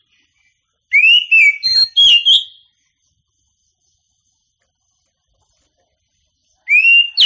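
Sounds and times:
Oriental magpie-robin singing: 0.9s - 2.7s, 6.6s - 7.2s.

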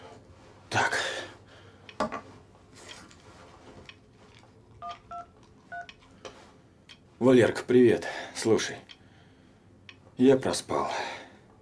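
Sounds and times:
telephone keypad tones as someone dials to make a call: 4.8s - 5.9s
speech: 7.2s - 8.9s, 10.2s - 11.2s.

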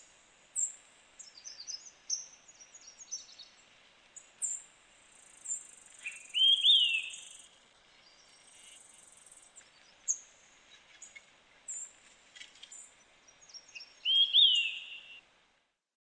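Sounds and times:
bird song with bright whistled phrases: 0.6s - 3.6s, 5.4s - 8.8s, 9.6s - 15.2s.

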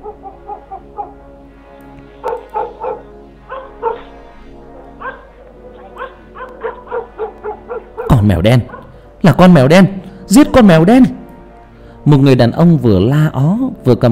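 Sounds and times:
dogs barking as a storm sets in: 0.0s - 1.4s, 2.1s - 9.2s
speech: 8.2s - 11.2s, 12.0s - 14.1s.

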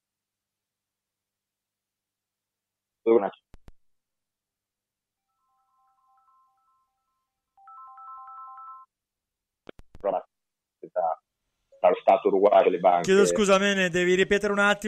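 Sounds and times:
speech: 3.1s - 3.5s, 12.3s - 14.8s
phone ringtone: 5.3s - 9.0s.

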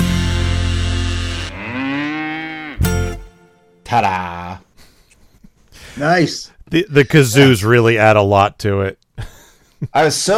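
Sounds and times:
cow mooing: 1.1s - 3.0s
speech: 3.9s - 4.4s, 6.0s - 10.3s.

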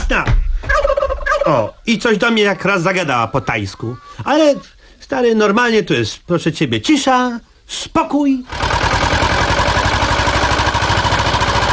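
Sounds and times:
speech: 0.1s - 0.4s, 1.5s - 8.8s
motorboat with Ursus engine chugging while entering a bay: 8.5s - 11.7s.

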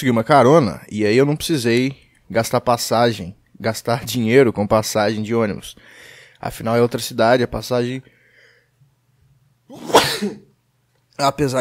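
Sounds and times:
speech: 0.0s - 8.2s, 9.7s - 10.5s, 11.2s - 11.5s
sneeze: 9.7s - 10.5s.

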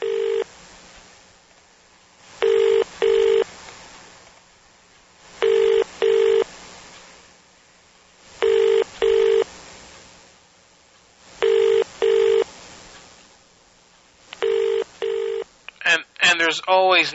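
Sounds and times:
telephone ringback tone of a call to a hotel: 0.0s - 0.5s, 2.4s - 3.4s, 5.4s - 6.5s, 8.4s - 9.5s, 11.4s - 12.5s, 14.4s - 15.4s
faint line hiss: 0.0s - 17.1s
speech: 15.9s - 17.1s.

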